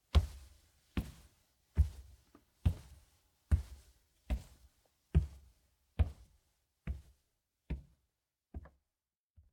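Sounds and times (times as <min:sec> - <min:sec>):
footsteps going down stairs: 0:00.1 - 0:08.8.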